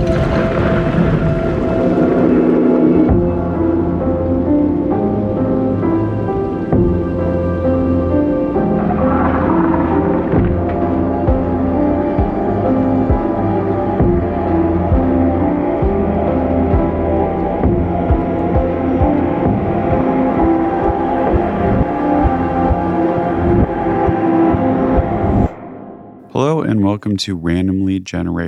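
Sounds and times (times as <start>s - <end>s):
sustained droning tones: 0.0s - 26.3s
instrumental podcast theme music: 0.0s - 28.0s
pulsing low rhythm: 3.1s - 8.8s, 9.4s - 25.5s
speech: 27.0s - 28.4s.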